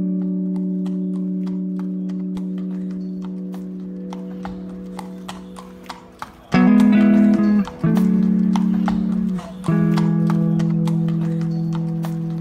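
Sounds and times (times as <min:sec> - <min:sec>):
horse hooves clip-clopping at a walking pace through a city: 0:00.0 - 0:12.4.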